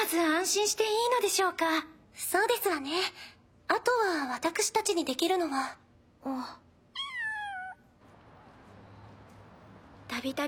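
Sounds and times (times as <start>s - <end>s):
speech: 0.1s - 6.6s, 10.1s - 10.4s
cat chirping and meowing: 6.9s - 7.9s.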